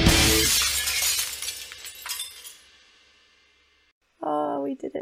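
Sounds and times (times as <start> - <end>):
glass shattering: 0.1 - 2.8
scattered glass pieces tinkling: 0.3 - 2.7
person speaking: 4.2 - 5.0.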